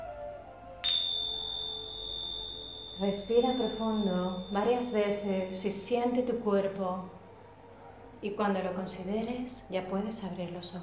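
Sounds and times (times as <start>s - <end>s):
faint low hum: 0.2s - 10.8s
bell struck once ringing: 0.8s - 5.6s
speech: 3.0s - 7.2s, 8.2s - 10.8s.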